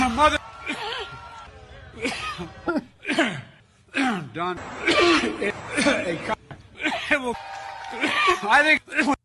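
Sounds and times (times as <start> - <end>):
speech: 0.1 - 0.5, 4.4 - 6.4, 7.1 - 9.2
raspy coughing: 2.0 - 7.2.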